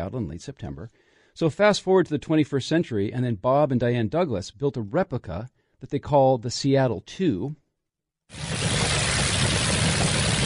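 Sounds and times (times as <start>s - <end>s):
speech: 0.0s - 7.6s, 8.3s - 8.6s
vintage 12-cylinder aircraft engine running: 8.4s - 10.4s.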